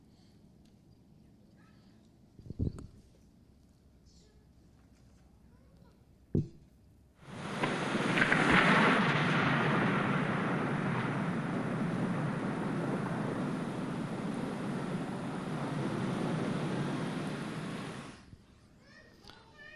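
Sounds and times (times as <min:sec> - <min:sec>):
thunder claps: 0:07.2 - 0:18.2
heavy downpour of rain: 0:07.2 - 0:18.3.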